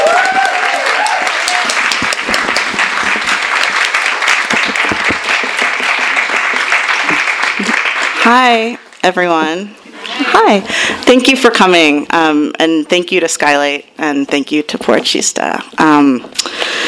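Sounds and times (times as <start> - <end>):
faint voices and cheers: 0.0 - 2.1
sizable audience applauding: 0.0 - 8.4
speech: 8.3 - 9.8, 10.4 - 16.8.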